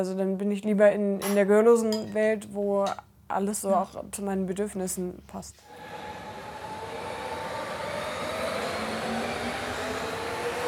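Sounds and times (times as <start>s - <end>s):
speech: 0.0s - 6.0s
faint tonal whines: 5.7s - 10.6s
train rumbling on rails: 5.8s - 10.6s.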